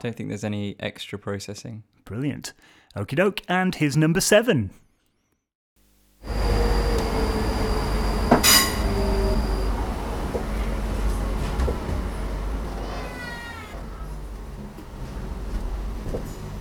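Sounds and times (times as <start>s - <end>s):
speech: 0.0s - 4.8s
thin high whining tones: 6.2s - 9.9s
brief rising squeal: 6.2s - 11.4s
heavy low rumble inside a moving train carriage: 6.3s - 16.6s
sharp clank: 8.3s - 9.0s.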